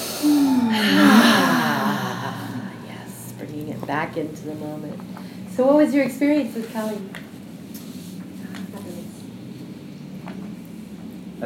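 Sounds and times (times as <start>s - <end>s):
deep breath in through nose, out through mouth: 0.0s - 3.3s
speech: 3.9s - 7.3s.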